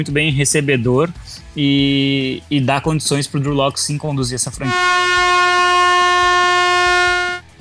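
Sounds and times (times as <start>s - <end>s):
speech: 0.0s - 5.5s
loud steady air horn blast: 4.6s - 7.5s.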